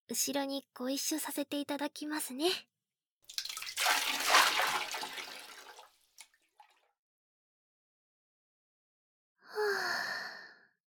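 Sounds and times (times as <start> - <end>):
speech: 0.1 - 2.7
water splashing and sloshing in a bath: 3.3 - 6.9.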